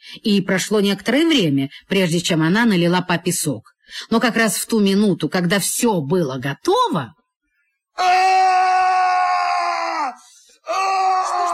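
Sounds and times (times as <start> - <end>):
speech: 0.1 - 7.2, 8.0 - 8.9
man screaming: 8.0 - 11.5.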